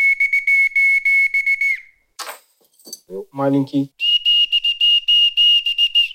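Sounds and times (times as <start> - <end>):
naval boatswain's whistle from the Northern Fleet blowing: 0.0 - 2.0, 4.0 - 6.1
clattering: 2.2 - 3.1
speech: 3.1 - 4.0.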